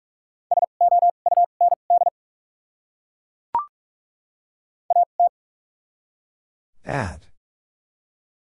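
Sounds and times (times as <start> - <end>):
rapid Morse code beeps at 45 words per minute in a single steady tone: 0.5 - 2.1
speech: 6.8 - 7.3.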